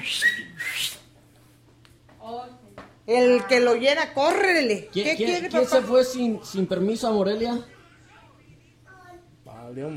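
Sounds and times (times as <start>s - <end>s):
person whistling a short breathy summoning call: 0.0s - 1.0s
speech: 3.1s - 7.8s, 9.7s - 9.9s.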